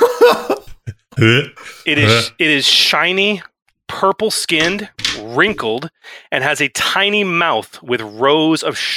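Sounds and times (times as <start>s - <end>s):
voice imitating a big blacksmith's hacking, retching cough: 1.1s - 2.3s
speech: 1.2s - 8.9s.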